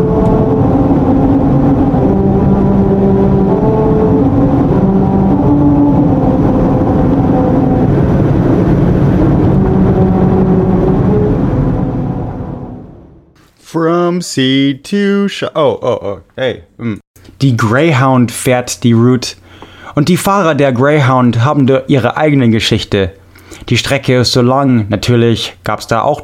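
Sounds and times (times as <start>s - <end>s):
car tires droning tones over a grooved musical road: 0.0s - 13.4s
loud road rumble of a car: 0.0s - 13.4s
speech: 13.8s - 19.4s, 20.0s - 26.2s.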